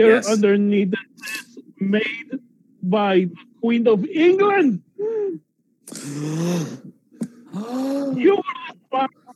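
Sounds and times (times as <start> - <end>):
speech: 0.0 - 9.2
person letting out an exaggerated voiced gasp: 5.0 - 8.2.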